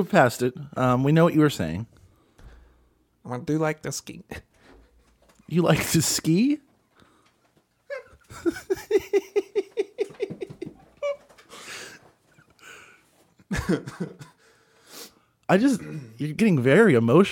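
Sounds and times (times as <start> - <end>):
speech: 0.0 - 2.0, 3.2 - 4.5, 5.5 - 6.7, 8.3 - 9.4, 13.5 - 14.3, 15.5 - 17.2
laughter: 7.9 - 11.3, 13.5 - 14.2
person coughing from something caught in the throat: 13.6 - 14.4, 15.7 - 16.2.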